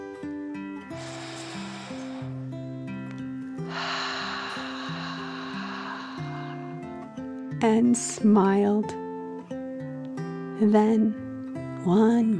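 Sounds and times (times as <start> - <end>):
gentle steady tonal music: 0.0 - 12.3
calm deep breath in and out: 0.8 - 7.4
speech: 7.6 - 9.0, 10.6 - 11.2, 11.8 - 12.3.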